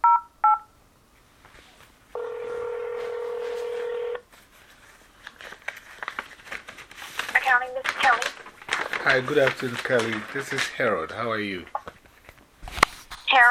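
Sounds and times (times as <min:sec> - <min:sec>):
faint scattered rustling: 0:01.2 - 0:13.4
steady telephone tone: 0:02.2 - 0:04.2
speech: 0:09.1 - 0:11.8.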